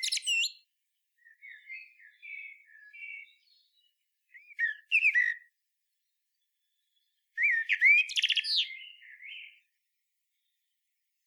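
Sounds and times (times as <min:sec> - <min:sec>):
common blackbird Turdus merula singing: 0:00.0 - 0:00.6, 0:01.2 - 0:05.5, 0:07.4 - 0:09.6.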